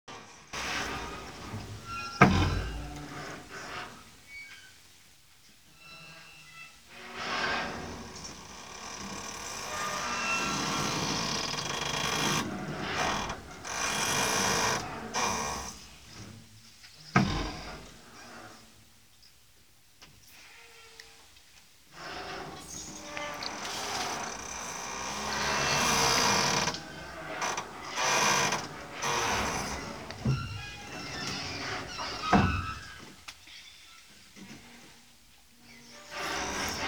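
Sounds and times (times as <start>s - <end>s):
creaking: 0.6s - 4.8s, 5.8s - 16.3s, 22.0s - 34.9s, 35.7s - 36.8s.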